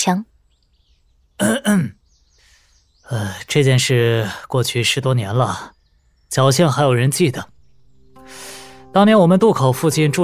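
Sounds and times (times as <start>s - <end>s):
speech: 0.0s - 0.3s, 1.4s - 2.0s, 3.1s - 7.5s, 8.3s - 10.2s
man clearing his throat gruffly: 1.4s - 2.0s.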